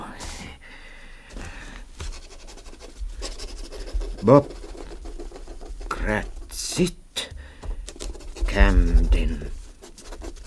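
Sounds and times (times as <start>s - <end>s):
pen scratching on paper: 2.0s - 6.6s, 7.8s - 10.4s
speech: 4.2s - 4.6s, 6.1s - 7.0s, 8.6s - 9.6s.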